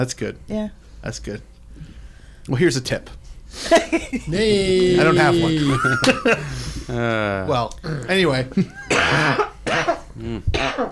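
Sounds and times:
speech: 0:00.0 - 0:10.8
laughter: 0:03.8 - 0:06.7
person coughing harshly: 0:08.9 - 0:10.8.

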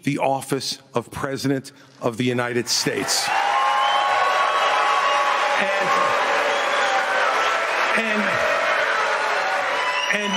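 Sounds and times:
speech: 0:00.0 - 0:03.5, 0:10.1 - 0:10.3
large audience booing: 0:03.0 - 0:10.3.

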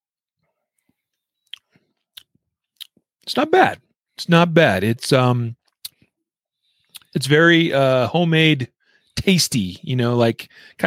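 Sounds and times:
wet mouth clicks while sipping root beer from a bottle: 0:01.4 - 0:03.0
speech: 0:03.3 - 0:05.6, 0:07.1 - 0:10.8.

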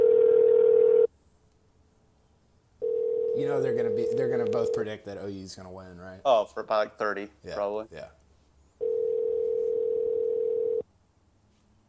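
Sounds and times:
telephone dial tone: 0:00.0 - 0:01.1, 0:02.8 - 0:04.8, 0:08.8 - 0:10.8
speech: 0:03.4 - 0:08.2.

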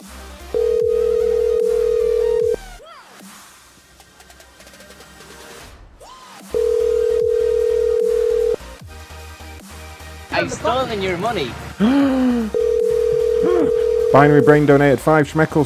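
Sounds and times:
outgoing phone call ringback tones: 0:00.6 - 0:02.6, 0:06.6 - 0:08.6, 0:12.5 - 0:14.7
speech: 0:10.4 - 0:12.6, 0:14.1 - 0:15.6.

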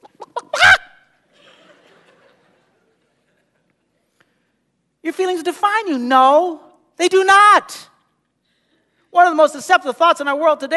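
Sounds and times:
chicken clucking and squawking: 0:00.0 - 0:01.0
laughter: 0:00.0 - 0:04.1
speech: 0:05.0 - 0:07.9, 0:09.2 - 0:10.7.

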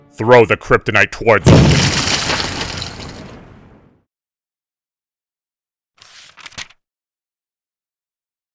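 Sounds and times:
speech: 0:00.1 - 0:02.3
small pieces of debris clattering down: 0:01.4 - 0:03.9
wall shattering outwards in a loud crash: 0:01.4 - 0:04.0.

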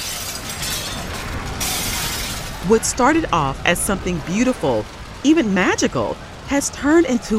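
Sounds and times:
store window glass being smashed: 0:00.0 - 0:02.6
speech: 0:02.7 - 0:07.3.

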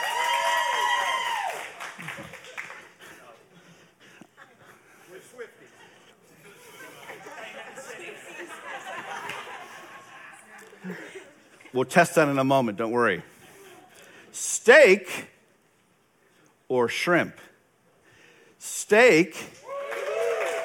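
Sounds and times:
whoops: 0:00.0 - 0:01.8, 0:19.6 - 0:20.6
crowd clapping and cheering, voting by applause: 0:00.0 - 0:03.5, 0:19.6 - 0:20.6
laughter: 0:05.7 - 0:11.6
speech: 0:11.8 - 0:13.3, 0:14.6 - 0:15.3, 0:16.7 - 0:17.5, 0:18.9 - 0:19.6.

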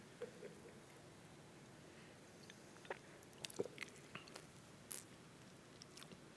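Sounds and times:
person drinking water: 0:00.2 - 0:06.2
wet mouth clicks: 0:02.4 - 0:06.2
person gulping and swallowing water: 0:02.8 - 0:05.2.

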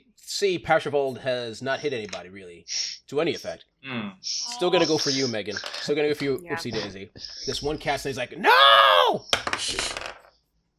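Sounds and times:
speech: 0:00.4 - 0:10.1
dice tumbling across a hard tabletop: 0:05.6 - 0:05.9, 0:09.3 - 0:10.4.

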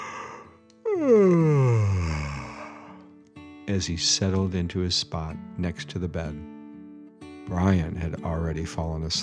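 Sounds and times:
long yawn trailing into a breathy exhale: 0:00.0 - 0:03.0
speech: 0:01.0 - 0:01.5, 0:03.7 - 0:06.6, 0:07.5 - 0:09.2.

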